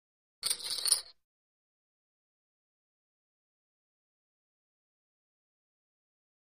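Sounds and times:
casino poker chips dropping: 0.4s - 1.1s.

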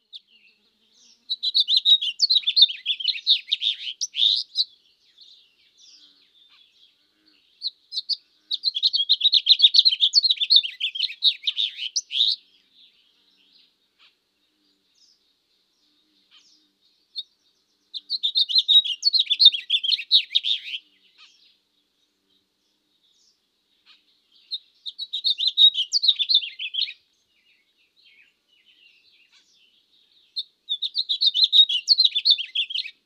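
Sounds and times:
house finch chirps in the country: 1.0s - 4.7s, 7.6s - 12.4s, 17.9s - 21.4s, 23.8s - 27.0s, 30.3s - 33.0s.

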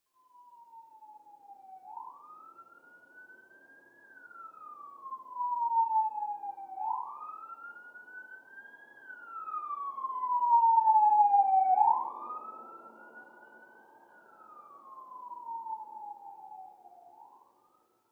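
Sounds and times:
police siren passing by slowly: 4.1s - 17.4s.

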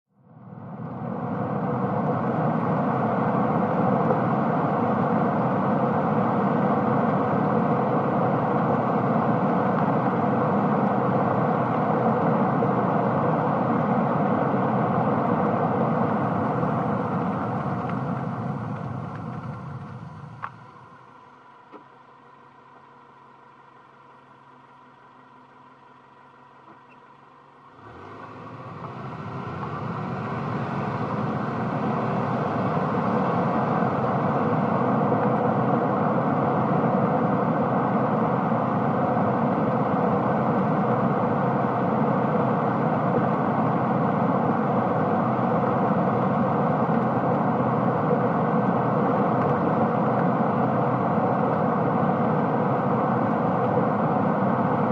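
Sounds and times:
small compact car driving at 25 to 35 mph: 0.8s - 21.3s, 26.6s - 54.8s.

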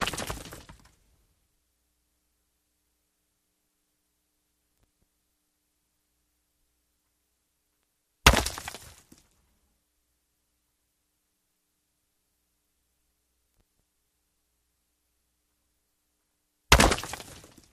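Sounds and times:
big sharp rock cracks: 0.0s - 1.0s, 8.3s - 9.4s, 16.7s - 17.7s.

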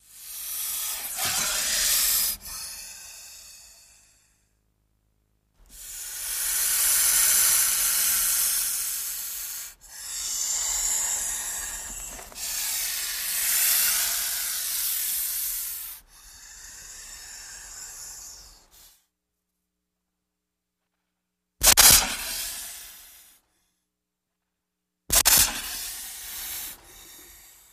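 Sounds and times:
snake hissing: 0.0s - 4.3s, 5.7s - 19.0s, 21.6s - 23.3s, 25.1s - 27.7s.

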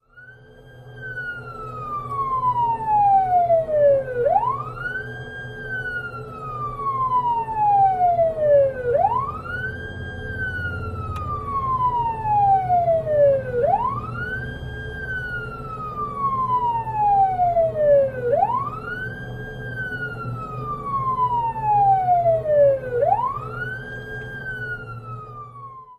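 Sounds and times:
police siren of various types heard from interior: 0.0s - 25.9s.

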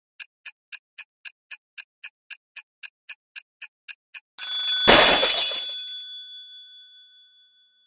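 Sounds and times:
alarm clock smashed: 4.4s - 6.2s.

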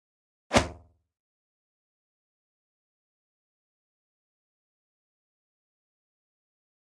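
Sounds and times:
pop up element impact: 0.5s - 0.8s.

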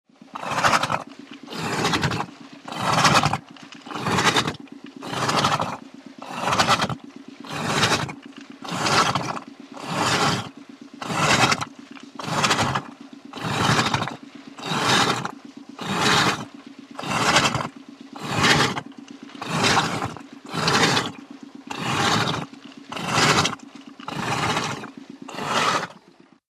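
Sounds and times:
water pump pumping: 0.1s - 26.4s.

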